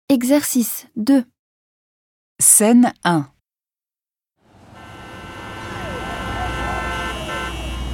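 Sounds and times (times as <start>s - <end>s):
speech: 0.1s - 1.3s, 2.4s - 3.3s
rumbling street background: 4.4s - 7.9s
car horns honking in a traffic jam after a team won a match: 4.5s - 7.9s.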